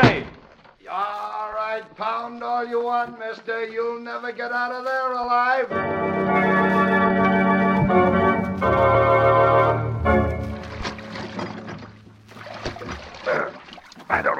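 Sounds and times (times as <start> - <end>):
speech: 1.8 - 7.3
sustained musical tones: 5.7 - 11.8
oars dipping and splashing through water: 7.8 - 14.3.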